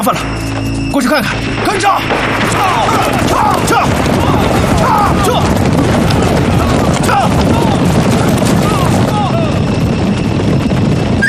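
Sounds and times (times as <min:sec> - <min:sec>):
speech: 0:00.0 - 0:05.9
rapid scattered gunfire crackling in a battle: 0:01.3 - 0:11.2
dense noisy battle din: 0:01.6 - 0:09.6
voices shouting: 0:01.6 - 0:09.7.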